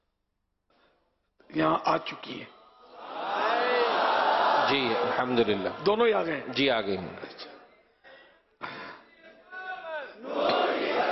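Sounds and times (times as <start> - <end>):
speech: 1.5 - 2.6, 4.7 - 7.5
crowd chanting religious slogans: 2.9 - 5.8, 10.0 - 11.1.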